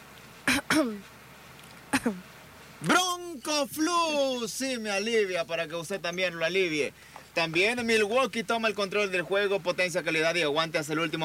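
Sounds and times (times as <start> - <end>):
harsh raspy coughing: 0.5 - 1.0, 1.9 - 2.2
speech: 0.8 - 1.2, 2.0 - 11.2.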